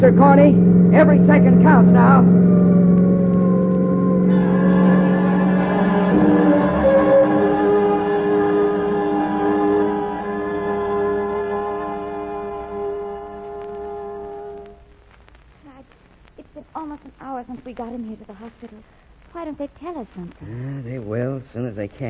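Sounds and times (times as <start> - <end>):
speech: 0.0 - 2.8, 18.2 - 22.0
car engine roaring and accelerating: 0.0 - 14.8
faint high wail: 1.9 - 14.8.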